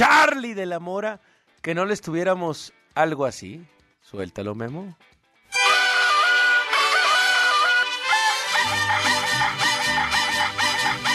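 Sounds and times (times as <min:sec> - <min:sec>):
speech: 0:00.0 - 0:05.1
bright musical tune with deep bass: 0:05.5 - 0:11.1
rooster crowing: 0:05.6 - 0:11.1.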